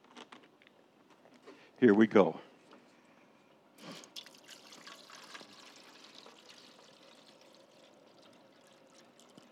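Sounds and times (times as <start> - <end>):
speech: 1.8 - 2.5
water pouring into a container: 3.8 - 9.5.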